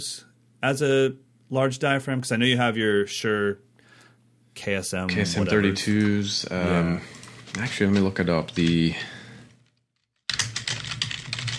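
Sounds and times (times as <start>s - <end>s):
speech: 0.0s - 3.7s, 4.6s - 9.2s
typing on a computer keyboard: 10.3s - 11.5s.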